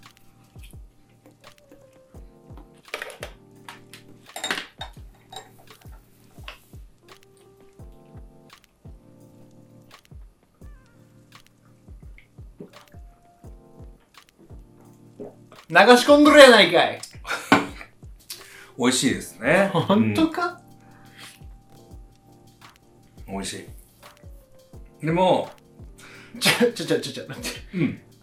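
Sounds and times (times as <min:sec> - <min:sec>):
dishes and cutlery clinking while raw Miyagi oysters are eaten with lemon at an oyster bar: 0:02.9 - 0:06.6
speech: 0:15.7 - 0:17.0, 0:18.8 - 0:20.6, 0:25.0 - 0:25.6, 0:26.6 - 0:28.1.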